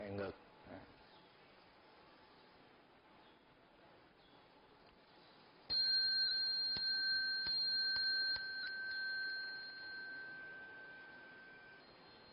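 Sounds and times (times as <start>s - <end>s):
speech: 0.1s - 1.0s
Buddhist temple bell ringing: 5.7s - 12.3s
sharp metallic strikes on a khánh chime during a Buddhist prostration ritual: 5.7s - 12.3s.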